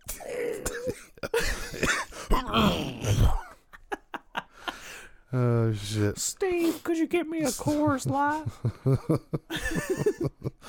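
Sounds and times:
man imitating a rough hacking cough: 0.0 - 3.6
speech: 5.3 - 10.1
laughter: 7.5 - 10.6.

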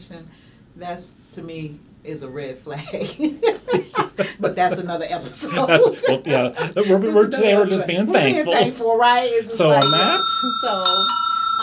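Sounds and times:
speech: 0.1 - 11.2
laughter: 2.8 - 9.0
bright high bell ringing: 9.6 - 11.6.

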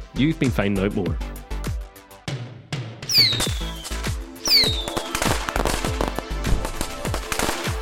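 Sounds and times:
speech: 0.2 - 1.4
rising firework whistles: 3.1 - 5.8
firecrackers exploding: 3.1 - 7.8.

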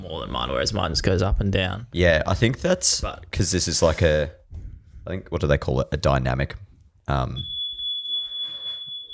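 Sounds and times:
speech: 0.3 - 4.4, 5.0 - 7.5
smoke alarm high-pitched tone: 7.4 - 9.1.

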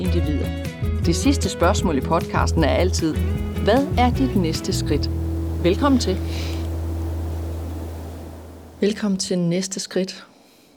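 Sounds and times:
speech: 0.0 - 6.6, 8.8 - 10.3
distant sea surf hiss: 1.8 - 10.7
faint low hum: 2.6 - 9.4.

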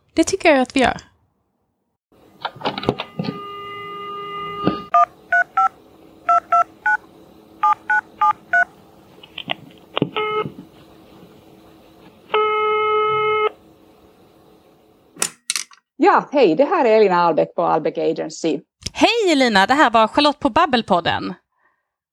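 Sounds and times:
speech: 0.2 - 1.1, 16.1 - 21.4
steady phone tone: 2.9 - 7.0, 7.6 - 8.7, 10.0 - 10.7
long phone ringing tone: 3.0 - 7.0, 7.6 - 8.7, 10.2 - 10.5, 12.3 - 13.6
phone keypad dialing beeps: 4.9 - 5.7, 6.3 - 7.0, 7.6 - 8.7.

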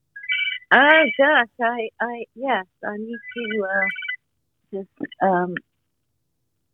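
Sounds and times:
melodic phone ringtone: 0.2 - 1.2, 3.1 - 4.2
speech: 0.7 - 4.0, 4.7 - 5.7.

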